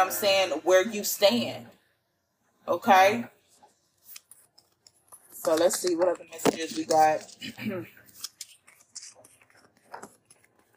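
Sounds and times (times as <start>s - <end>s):
speech: 0.0s - 1.8s, 2.6s - 3.4s, 5.4s - 8.0s
deck of cards being shuffled: 3.9s - 10.7s.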